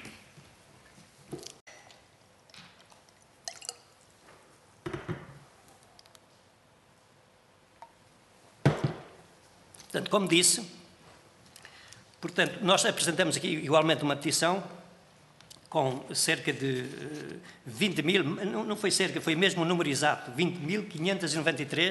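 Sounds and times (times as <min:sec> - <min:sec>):
water being poured by a speaker during an assembly hearing: 0:03.0 - 0:04.1
speech: 0:09.9 - 0:10.8, 0:12.4 - 0:14.8, 0:15.7 - 0:21.8.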